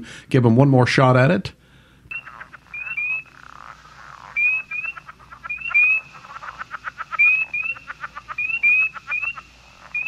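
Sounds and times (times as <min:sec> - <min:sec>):
speech: 0:00.0 - 0:01.6
frog calling: 0:02.1 - 0:10.0.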